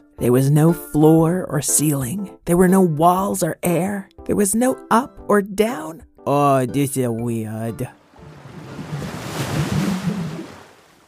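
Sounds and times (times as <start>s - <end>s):
speech: 0.2s - 8.0s
swirling water and waves: 8.0s - 11.0s.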